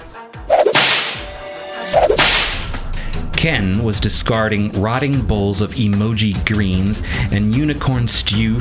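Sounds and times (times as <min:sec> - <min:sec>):
whip cracks: 0:00.5 - 0:02.8
speech: 0:03.4 - 0:08.5.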